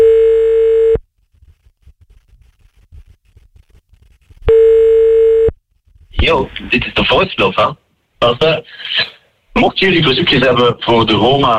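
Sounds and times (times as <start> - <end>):
telephone tone while a number is being called: 0.0 - 1.0, 4.5 - 5.5
speech: 6.3 - 11.5.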